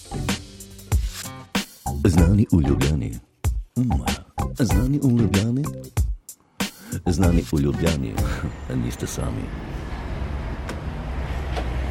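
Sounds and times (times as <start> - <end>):
speech: 2.0 - 6.0, 6.9 - 9.8
city traffic rumble at a bus stop in Ljubljana: 7.6 - 11.8
city bus engines idling at a bus stop in Ljubljana: 8.2 - 11.8.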